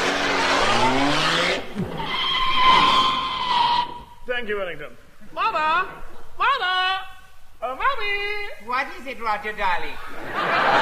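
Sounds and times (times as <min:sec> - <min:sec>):
rough falling engine-like whine: 0:00.0 - 0:02.7
car driving off with tires skidding, comic sound effect: 0:00.0 - 0:04.2
steady high squealing tone: 0:00.0 - 0:04.3
speech: 0:04.4 - 0:07.0, 0:07.6 - 0:10.8
laughter: 0:10.0 - 0:10.8.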